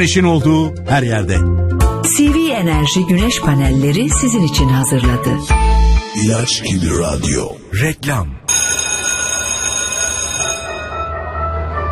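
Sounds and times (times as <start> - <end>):
speech: 0.0 - 8.8
school bell ringing: 8.5 - 11.1.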